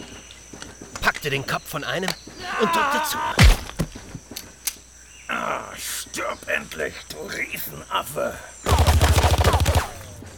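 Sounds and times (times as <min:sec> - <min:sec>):
speech: 0:01.2 - 0:03.6, 0:05.8 - 0:09.4
rapid burst of gunfire: 0:08.7 - 0:10.1.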